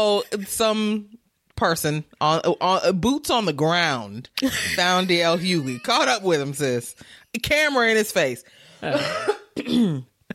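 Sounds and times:
speech: 0:00.0 - 0:10.1
rough voiced coughs: 0:08.8 - 0:10.3.

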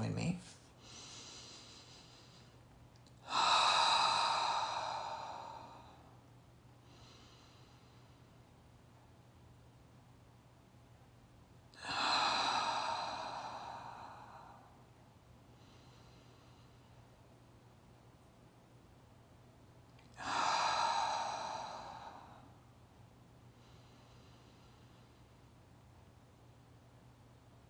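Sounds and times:
deep breaths in through the nose and out through the mouth: 0:00.8 - 0:08.5, 0:11.7 - 0:17.3, 0:20.0 - 0:22.9, 0:23.5 - 0:25.6.

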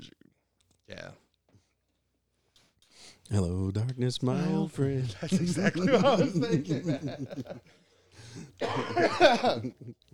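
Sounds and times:
speech: 0:03.3 - 0:07.8, 0:08.4 - 0:10.0
laughter: 0:04.9 - 0:07.7, 0:08.4 - 0:10.0
person coughing from a tickle in the throat: 0:08.4 - 0:09.8.

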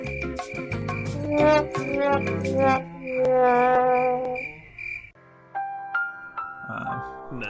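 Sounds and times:
cricket chirping sound effect: 0:00.0 - 0:05.2
dense croaking: 0:00.5 - 0:05.1
speech: 0:01.4 - 0:03.6.

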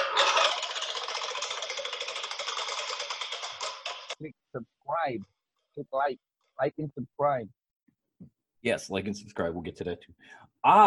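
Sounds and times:
topic wheel spinning with rapid clicking ticks: 0:00.0 - 0:04.2
speech: 0:04.2 - 0:07.6, 0:08.2 - 0:10.8.

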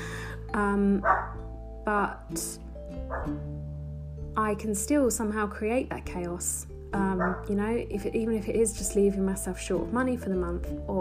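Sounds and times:
speech: 0:00.5 - 0:03.7, 0:04.4 - 0:11.0
dog giving a short bark: 0:01.0 - 0:01.4, 0:03.1 - 0:03.4, 0:07.2 - 0:07.5.

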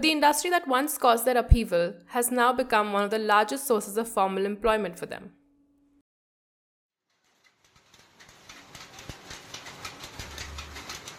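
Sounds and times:
speech: 0:00.0 - 0:05.4
automatic power loom of a sari-producing enterprise in India clattering: 0:07.3 - 0:11.1.

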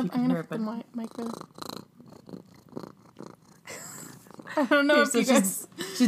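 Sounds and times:
speech: 0:00.0 - 0:01.6, 0:04.6 - 0:06.0
domestic cat purring: 0:00.4 - 0:05.2.

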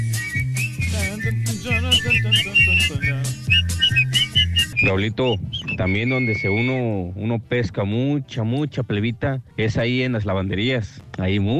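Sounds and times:
man whistling a lively tune: 0:00.0 - 0:06.9
rhythmic backing track with bass line and percussion: 0:00.0 - 0:06.9
speech: 0:02.0 - 0:03.8, 0:04.8 - 0:11.5.

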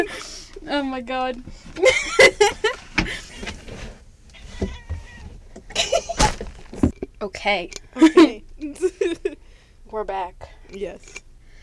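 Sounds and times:
speech: 0:00.0 - 0:03.2, 0:07.2 - 0:09.3, 0:09.9 - 0:11.2
soft rustling in a box: 0:01.1 - 0:07.0
faint bumps in a box: 0:01.1 - 0:07.2
cat sneezing inside a box: 0:05.7 - 0:06.8.

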